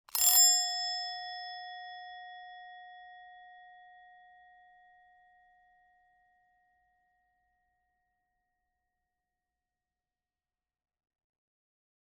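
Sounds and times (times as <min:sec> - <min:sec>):
desk bell: 0:00.1 - 0:05.0.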